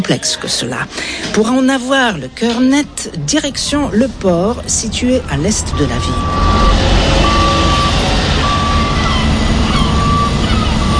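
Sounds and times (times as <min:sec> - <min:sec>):
speech: 0:00.0 - 0:07.1
container trucks rumbling with a deep engine drone at a port: 0:00.6 - 0:10.9
truck reversing beeps: 0:05.3 - 0:10.9.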